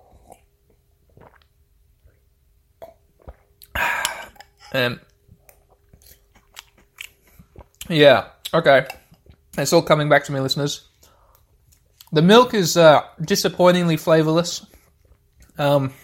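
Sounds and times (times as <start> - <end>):
speech: 4.7 - 5.1, 7.9 - 9.0, 9.6 - 10.9, 12.1 - 14.7, 15.6 - 16.0
chewing a crunchy island of Milo powder floating on milk: 5.5 - 7.9.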